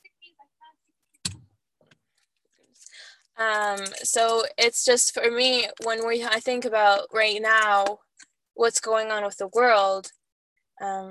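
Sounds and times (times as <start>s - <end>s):
keys jingling and clicking: 2.7s - 4.5s
speech: 3.4s - 8.0s, 8.6s - 10.2s, 10.8s - 11.0s.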